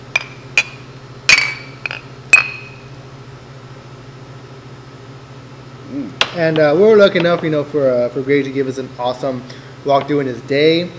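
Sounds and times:
beer glasses clinking in a toast at a brewery: 0:00.2 - 0:02.9
speech: 0:05.9 - 0:10.9.

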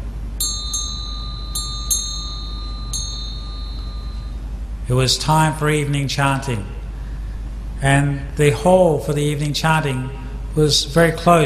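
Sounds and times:
low steady rumble: 0:00.0 - 0:11.4
bright metallic bell struck to call monks to evening chanting: 0:00.4 - 0:04.6
speech: 0:04.9 - 0:06.8, 0:07.8 - 0:11.4.

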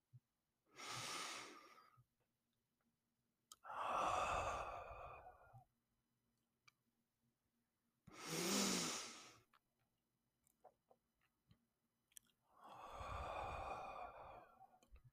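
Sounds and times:
slow deep breaths in and out during a guided relaxation exercise: 0:00.7 - 0:02.1, 0:03.6 - 0:05.7, 0:08.1 - 0:09.5, 0:12.5 - 0:15.0.

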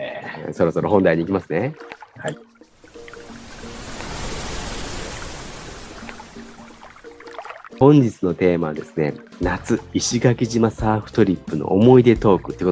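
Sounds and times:
speech: 0:00.4 - 0:02.5, 0:07.8 - 0:12.7
ocean wave breaking: 0:02.7 - 0:07.8.

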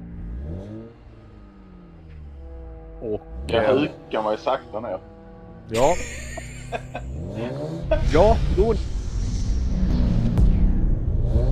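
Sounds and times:
cars, motorcycles and trucks passing: 0:00.0 - 0:11.5
motor vehicle engine revving: 0:00.0 - 0:11.5
speech: 0:03.0 - 0:05.1, 0:05.7 - 0:08.9
laughter: 0:05.7 - 0:08.4.

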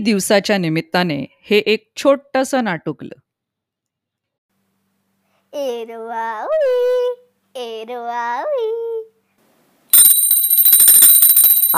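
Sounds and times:
speech: 0:00.0 - 0:03.2, 0:05.5 - 0:09.1
electric theatre bell ringing before a play: 0:10.0 - 0:11.7.

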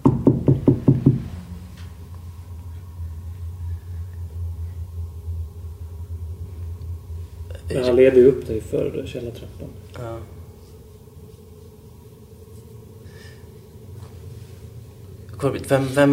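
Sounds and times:
steady low rumble: 0:00.0 - 0:16.1
knocks on a door from a floor above: 0:00.1 - 0:01.3
speech: 0:08.0 - 0:10.4, 0:15.4 - 0:16.1.

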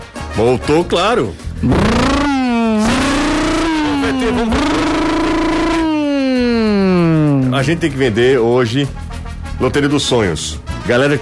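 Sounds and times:
speech: 0:00.4 - 0:02.2, 0:04.1 - 0:04.9, 0:07.5 - 0:09.0, 0:09.6 - 0:11.2
brand-new motorcycle engine revving loudly: 0:01.5 - 0:08.3.

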